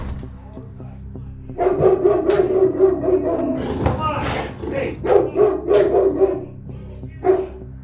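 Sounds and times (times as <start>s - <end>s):
large dog barking: 1.6s - 3.8s, 5.0s - 6.6s, 7.2s - 7.7s.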